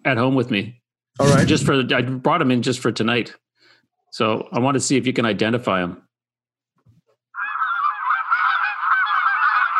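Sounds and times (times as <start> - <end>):
speech: 0.1 - 3.4, 4.1 - 6.0
flock of Canada geese honking: 7.4 - 9.7.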